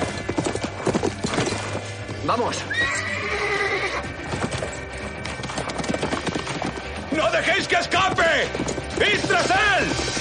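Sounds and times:
horse hooves galloping through vineyards: 0.0s - 10.1s
speech: 2.3s - 3.4s, 7.2s - 10.1s
horse whinnying: 2.6s - 4.5s.

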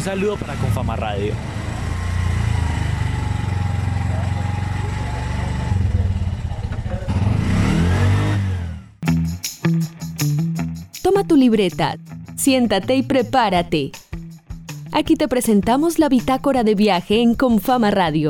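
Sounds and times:
speech: 0.0s - 1.6s, 11.2s - 14.0s, 14.9s - 18.2s
small motorcycle taxi engine: 0.0s - 9.0s
music: 9.0s - 18.2s.

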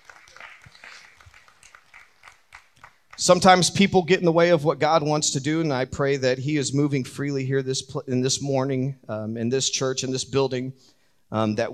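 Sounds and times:
crowd clapping in praise: 0.0s - 3.6s
speech: 3.2s - 11.7s.

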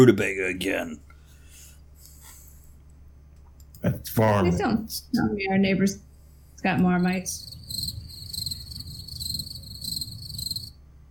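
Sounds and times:
speech: 0.0s - 1.1s, 3.8s - 7.9s
low rumbling background: 3.9s - 10.7s
cricket chirping sound effect from a button: 6.4s - 10.8s.

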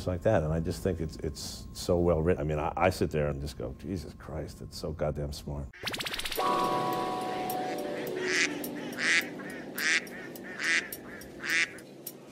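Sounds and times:
speech: 0.0s - 6.9s
geese honking: 7.2s - 11.8s
ducks quacking: 7.4s - 11.8s.

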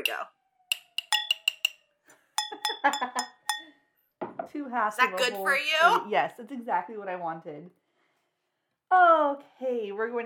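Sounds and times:
speech: 0.0s - 0.4s, 2.8s - 3.3s, 4.5s - 7.8s, 8.9s - 10.2s
mugs clinking together in a toast at a party: 0.0s - 1.8s, 2.4s - 3.8s.

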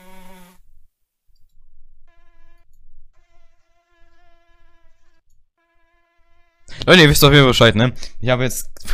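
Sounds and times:
mosquito whining: 0.0s - 0.6s, 2.1s - 6.7s
speech: 6.9s - 8.9s.

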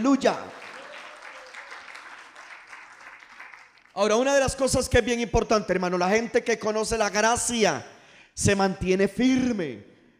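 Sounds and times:
speech: 0.0s - 0.5s, 4.0s - 9.9s
church audience applauding in praise: 0.0s - 4.2s.

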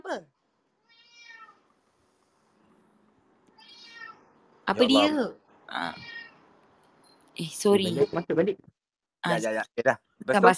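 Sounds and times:
speech: 0.1s - 0.3s, 4.7s - 6.1s, 7.4s - 10.5s
cat meowing: 0.8s - 1.6s, 3.6s - 4.3s, 6.0s - 6.4s, 7.8s - 8.3s.

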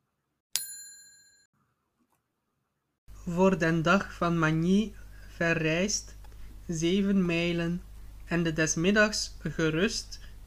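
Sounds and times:
small bell ting: 0.6s - 1.5s
speech: 3.3s - 10.4s.

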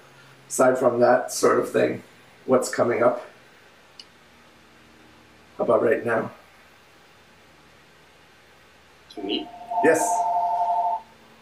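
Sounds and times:
speech: 0.5s - 3.3s, 5.6s - 6.4s, 9.2s - 10.2s
telephone ringing with an electronic two-tone burst: 9.2s - 11.1s.

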